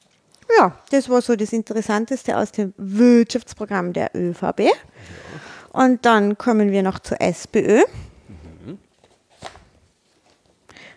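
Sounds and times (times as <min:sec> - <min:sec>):
speech: 0:00.6 - 0:08.1
brief murmur of voice: 0:08.0 - 0:08.8
pages of printed political party programmes being flipped: 0:08.9 - 0:10.7.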